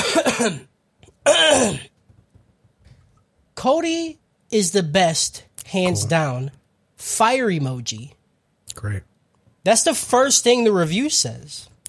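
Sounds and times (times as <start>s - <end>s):
person clearing throat: 0.0s - 1.9s, 5.9s - 6.2s
speech: 0.4s - 1.9s, 3.6s - 8.2s, 8.8s - 11.7s.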